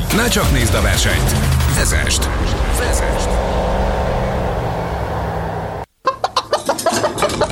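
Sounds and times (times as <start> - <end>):
steady rumbling noise: 0.0 - 6.0
speech: 0.1 - 3.8
chicken clucking: 6.0 - 7.5.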